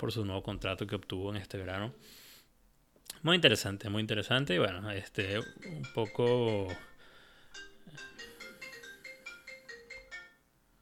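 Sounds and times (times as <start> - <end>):
speech: 0.0 - 2.3, 3.1 - 6.9, 7.5 - 8.2
melodic mobile phone ringtone: 5.2 - 10.5.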